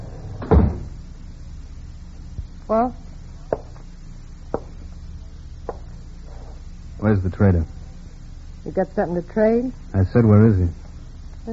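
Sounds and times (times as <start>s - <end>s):
solid thump of a log cabin front door: 0.4s - 1.0s
speech: 2.7s - 3.0s, 7.0s - 7.8s, 8.7s - 10.8s.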